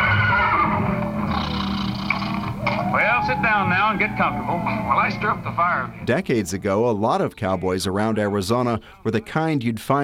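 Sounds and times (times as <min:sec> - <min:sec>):
horse neighing: 0:00.0 - 0:05.5
speech: 0:03.3 - 0:10.0.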